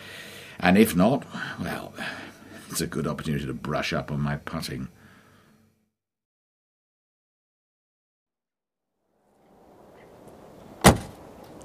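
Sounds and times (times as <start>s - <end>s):
speech: 0.6s - 5.0s
car rough engine and road rumble driven fast along a farm track: 9.5s - 11.6s.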